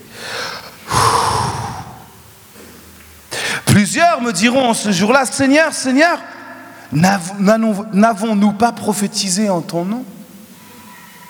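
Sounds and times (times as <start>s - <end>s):
deep breath in taken before reading scripture aloud in a sermon: 0.0s - 2.4s
speech: 3.8s - 10.2s.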